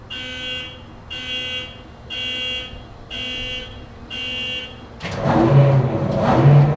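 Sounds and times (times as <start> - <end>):
Class 66 locomotive engine starting: 5.0 - 6.7.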